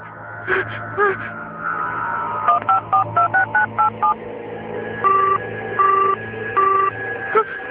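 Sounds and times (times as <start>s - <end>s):
steady low drone: 0.0s - 7.6s
three longer evenly spaced phone tones: 0.1s - 7.6s
phone keypad tone beeps as a number is dialed: 2.5s - 4.2s, 5.1s - 6.9s.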